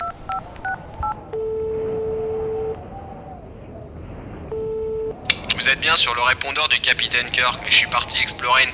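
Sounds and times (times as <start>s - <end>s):
telephone keypad tones: 0.0s - 2.8s, 4.5s - 5.4s
speech: 5.7s - 8.7s.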